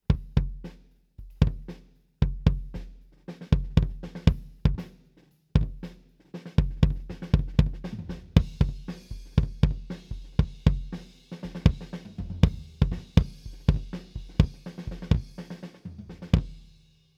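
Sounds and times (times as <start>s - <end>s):
kick drum miked off the centre of the head with an MD421: 0.1s - 2.9s, 3.5s - 4.8s, 6.6s - 11.0s, 11.6s - 15.4s.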